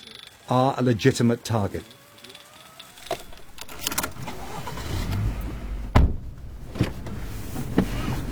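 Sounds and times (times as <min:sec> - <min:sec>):
speech: 0:00.5 - 0:02.0
car engine rumble heard from inside the cabin: 0:03.0 - 0:08.3
sharp clicks and knocks: 0:03.0 - 0:08.3.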